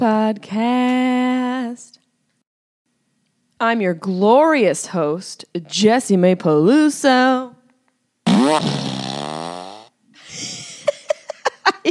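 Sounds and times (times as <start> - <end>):
speech: 0.0 - 2.0, 3.6 - 7.5, 8.5 - 8.9
fart sound effect from a fart machine: 8.3 - 10.0.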